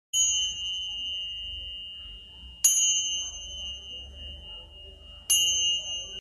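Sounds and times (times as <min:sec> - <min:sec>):
tingsha cymbals ringing: 0:00.2 - 0:06.2.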